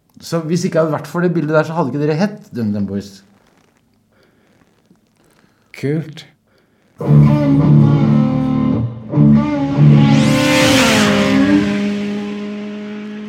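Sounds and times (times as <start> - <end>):
speech: 0.2 - 3.3, 5.8 - 6.3, 7.0 - 7.9
motorcycle with an oil leak revving loudly: 7.0 - 13.2.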